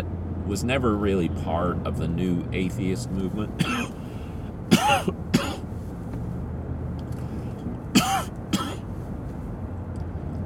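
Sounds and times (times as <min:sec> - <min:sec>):
speech: 0:00.0 - 0:04.0
low hum: 0:00.0 - 0:10.4
harsh coughing: 0:03.6 - 0:04.0, 0:04.7 - 0:05.7, 0:07.9 - 0:08.8.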